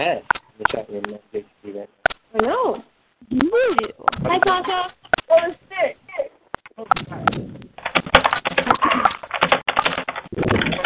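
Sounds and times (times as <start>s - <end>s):
speech: 0.0s - 6.0s
rapid typing on a computer keyboard: 6.9s - 10.8s.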